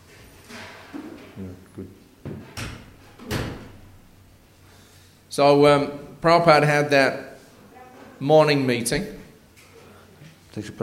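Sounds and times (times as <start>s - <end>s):
speech: 1.4s - 2.0s, 5.4s - 7.3s, 8.2s - 9.2s, 10.6s - 10.8s
door pushed shut with knocks and a solid thud: 2.2s - 3.9s.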